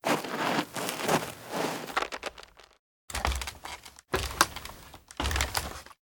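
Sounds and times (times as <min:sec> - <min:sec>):
tree ladder: 0:00.0 - 0:05.9.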